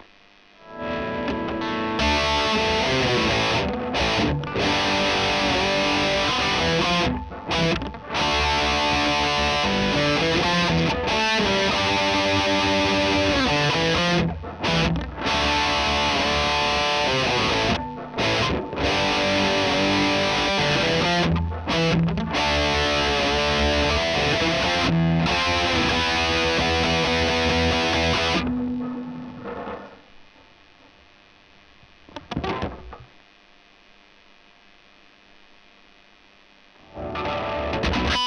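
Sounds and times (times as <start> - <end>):
electric guitar: 0.0 - 30.9, 31.8 - 33.4, 36.8 - 38.2.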